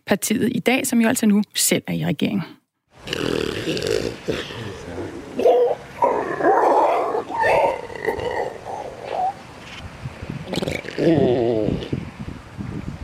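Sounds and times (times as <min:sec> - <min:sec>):
speech: 0:00.1 - 0:05.6, 0:11.0 - 0:11.7
grey seal moaning and wailing calls: 0:03.0 - 0:09.4, 0:10.5 - 0:12.0.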